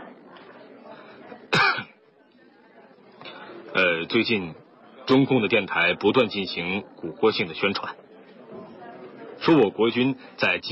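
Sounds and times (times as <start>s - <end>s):
faint low murmur: 0.0s - 10.6s
awkward cough: 1.6s - 1.9s
speech: 3.8s - 8.0s, 9.4s - 10.6s.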